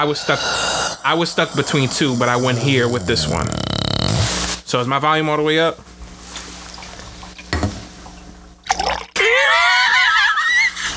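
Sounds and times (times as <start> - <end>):
speech: 0.0 - 3.7, 4.7 - 5.9
water poured into a mouth gurgling: 1.7 - 4.4, 8.7 - 9.2
laughter: 9.2 - 10.9.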